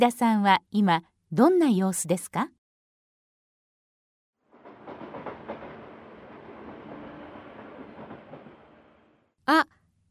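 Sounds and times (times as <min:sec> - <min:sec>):
speech: 0:00.0 - 0:02.6, 0:09.5 - 0:09.8
moving train carriage interior rumble and clatter: 0:04.6 - 0:09.1.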